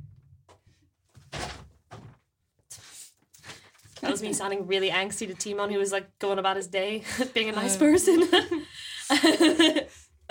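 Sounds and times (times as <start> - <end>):
door closing with thuds and scrapes: 1.2 - 2.2
speech: 4.0 - 10.0
laughter: 7.0 - 10.3.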